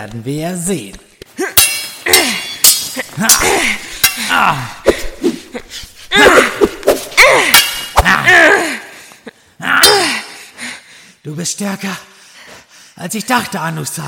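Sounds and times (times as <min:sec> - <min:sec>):
speech: 0:00.0 - 0:01.5, 0:03.2 - 0:05.0, 0:05.6 - 0:06.7, 0:11.3 - 0:12.2, 0:13.0 - 0:14.0
swords clashing in a fight: 0:01.4 - 0:05.1, 0:06.2 - 0:08.6, 0:09.7 - 0:10.3
strained effortful vocal sounds: 0:01.4 - 0:08.9, 0:09.6 - 0:10.4.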